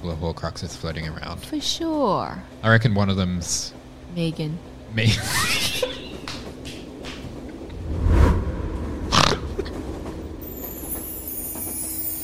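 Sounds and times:
speech: 0:00.0 - 0:05.9
train rolling along the rails: 0:00.1 - 0:12.2
laughter: 0:05.0 - 0:06.5
train wheels clunking on the track: 0:05.7 - 0:07.7, 0:09.3 - 0:12.2.

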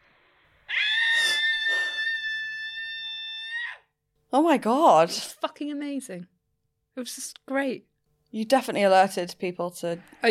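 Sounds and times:
person screaming loudly outdoors: 0:00.7 - 0:03.8
speech: 0:04.3 - 0:06.4, 0:07.0 - 0:10.2.

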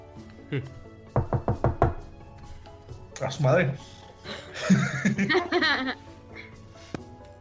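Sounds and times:
speech: 0:00.5 - 0:00.9, 0:03.2 - 0:06.0
knocking on a door: 0:01.1 - 0:02.2
laughter: 0:04.3 - 0:06.0.

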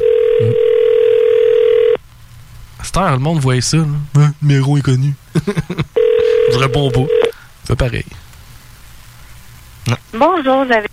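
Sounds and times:
landline telephone dial tone: 0:00.0 - 0:02.0, 0:06.0 - 0:07.4
speech: 0:02.9 - 0:05.9, 0:06.5 - 0:08.2, 0:09.9 - 0:10.9
laughter: 0:05.3 - 0:06.0.

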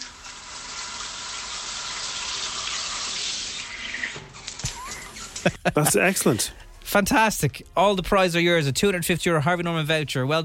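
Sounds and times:
shower spraying water: 0:00.0 - 0:05.7
laughter: 0:04.6 - 0:06.5
speech: 0:05.4 - 0:10.4.

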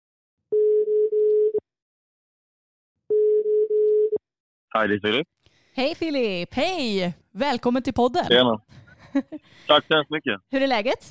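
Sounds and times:
phone ringback tone: 0:00.5 - 0:01.6, 0:03.1 - 0:04.2
speech: 0:04.8 - 0:11.0.

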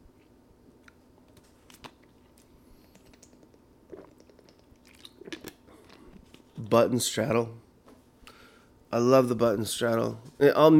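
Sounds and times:
faint steady hiss: 0:00.0 - 0:10.7
person sipping water: 0:02.0 - 0:06.6
swallowing: 0:02.8 - 0:06.4
speech: 0:06.7 - 0:07.6, 0:08.9 - 0:10.7.

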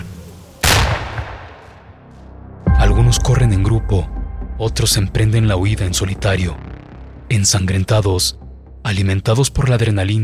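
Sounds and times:
gunshot fired at fleeing young people with rumbling echo: 0:00.6 - 0:02.0
speech: 0:03.1 - 0:06.7, 0:07.3 - 0:10.2.

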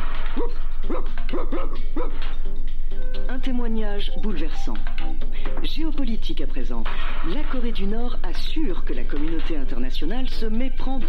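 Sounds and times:
dog barking: 0:00.3 - 0:02.3
speech: 0:01.3 - 0:11.0.

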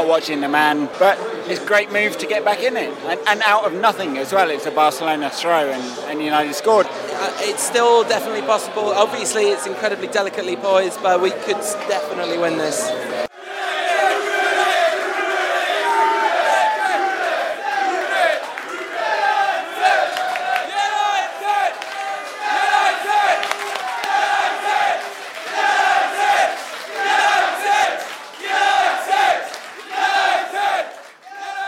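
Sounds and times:
speech: 0:00.1 - 0:13.3
pub crowd chanting at a football watch party: 0:11.2 - 0:31.6.

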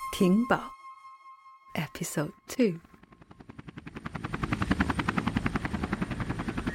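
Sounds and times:
speech: 0:00.1 - 0:00.7, 0:02.0 - 0:02.9
helicopter rotor blades whirring: 0:01.9 - 0:06.7.

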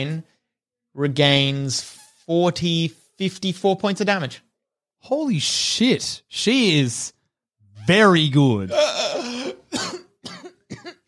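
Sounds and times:
speech: 0:00.0 - 0:00.3, 0:01.0 - 0:04.4, 0:05.0 - 0:07.2, 0:07.8 - 0:10.0
person coughing and spluttering: 0:08.7 - 0:11.0.

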